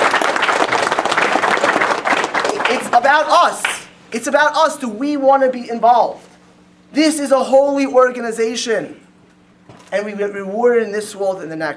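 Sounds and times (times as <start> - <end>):
audience at a Jewish community gathering applauding: 0.0 - 3.9
speech: 3.1 - 6.3, 6.9 - 9.0, 9.9 - 11.7.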